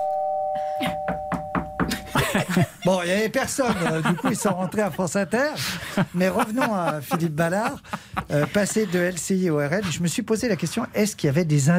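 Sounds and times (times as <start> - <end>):
doorbell ringing at an office door: 0.0 - 2.2
laughter: 1.9 - 10.8
speech: 2.6 - 11.7.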